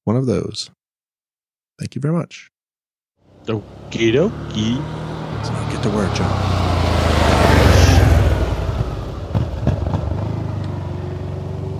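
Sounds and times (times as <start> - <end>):
speech: 0.1 - 0.8, 1.8 - 2.5, 3.4 - 6.6
Harley-Davidson motorcycle engine revving: 3.3 - 11.7.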